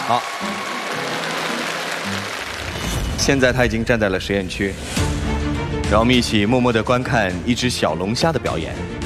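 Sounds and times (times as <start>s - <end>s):
audience applause: 0.0s - 3.6s
speech: 0.1s - 0.6s, 3.2s - 5.3s, 5.9s - 8.9s.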